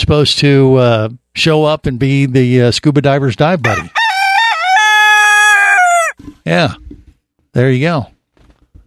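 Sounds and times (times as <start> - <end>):
speech: 0.0 - 4.0, 6.4 - 6.9, 7.6 - 8.1
rooster crowing: 3.6 - 6.2.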